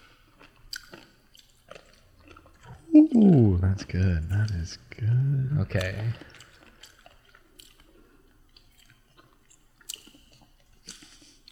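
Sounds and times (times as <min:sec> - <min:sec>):
crunchy chewing of food from a jar: 0:00.0 - 0:03.4, 0:05.8 - 0:11.4
speech: 0:03.0 - 0:06.4.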